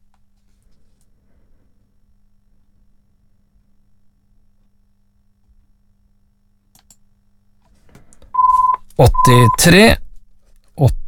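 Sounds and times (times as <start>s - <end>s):
telephone ringing with electronic tones: 8.4s - 9.7s
person speaking: 8.4s - 10.0s, 10.8s - 11.0s.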